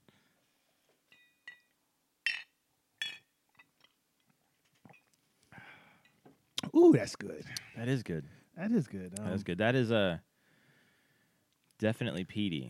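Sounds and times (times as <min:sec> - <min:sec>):
small glass handling sounds: 0:01.1 - 0:04.0, 0:04.6 - 0:05.2, 0:06.0 - 0:06.4
whiskey glasses clinking in a toast: 0:01.1 - 0:04.0, 0:04.9 - 0:05.1
speech: 0:06.8 - 0:10.3, 0:11.8 - 0:12.6.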